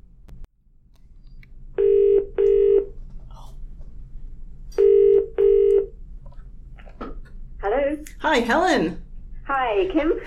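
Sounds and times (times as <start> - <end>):
transatlantic phone call ringing tone in double bursts: 1.8 - 2.9, 4.8 - 5.9
speech: 8.2 - 9.0, 9.6 - 10.2.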